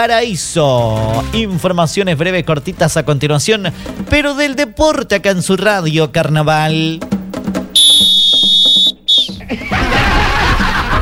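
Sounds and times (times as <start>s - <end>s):
speech: 0.0s - 7.1s
loud shrill whistle blowing: 7.8s - 9.5s
laughter: 9.2s - 11.0s.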